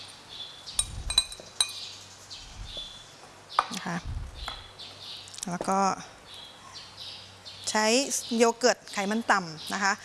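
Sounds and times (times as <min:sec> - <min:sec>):
dishes clinking as an egg yolk is put into a dish: 0:00.8 - 0:01.9
speech: 0:03.8 - 0:04.2, 0:05.4 - 0:06.2, 0:07.7 - 0:10.0.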